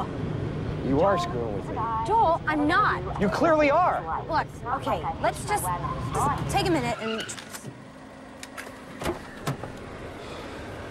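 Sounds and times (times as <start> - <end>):
low steady engine-like hum: 0.0 - 10.8
speech: 0.8 - 7.6
car door unlatching and opening: 8.5 - 10.0.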